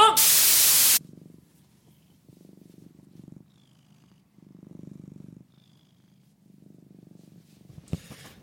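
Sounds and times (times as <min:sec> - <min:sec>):
short burst of hissing static: 0:00.2 - 0:01.0
cat purring: 0:00.9 - 0:08.4.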